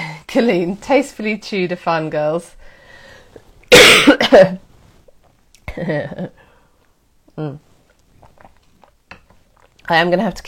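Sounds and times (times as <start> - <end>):
speech: 0.3 - 2.6, 3.7 - 4.6, 5.8 - 6.4, 7.4 - 7.6, 9.9 - 10.4
person clearing throat: 3.7 - 4.6
person coughing harshly: 3.7 - 4.6.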